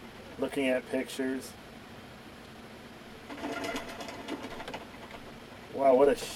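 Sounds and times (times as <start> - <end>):
speech: 0.4 - 1.6, 5.8 - 6.3
bird wings flapping: 3.3 - 5.4.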